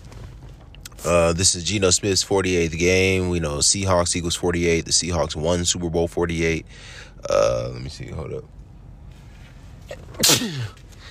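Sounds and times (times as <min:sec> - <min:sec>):
speech: 0:01.0 - 0:08.6, 0:09.9 - 0:10.8
person sneezing: 0:09.9 - 0:10.8.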